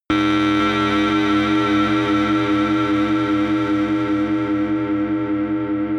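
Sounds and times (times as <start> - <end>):
drones: 0.1 - 5.8
stinger hum: 0.1 - 5.8.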